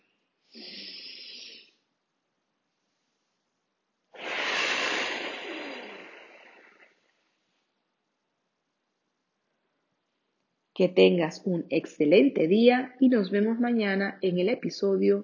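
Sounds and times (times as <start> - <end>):
audible breath with airy inhale and rushing exhale: 0.4 - 1.8, 4.1 - 7.3
speech: 10.8 - 15.2.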